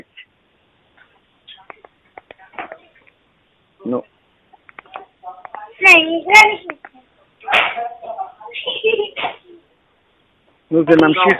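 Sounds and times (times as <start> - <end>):
speech: 3.9 - 4.1, 5.9 - 6.8, 10.7 - 11.3
children's voices chattering and calling out in the background: 4.8 - 9.8.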